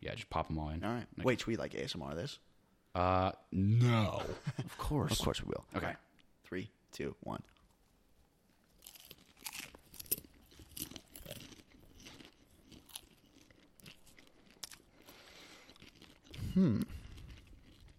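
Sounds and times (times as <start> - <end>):
speech: 0.1 - 7.6, 16.6 - 17.0
chewing of crunchy spicy snacks: 8.6 - 17.9.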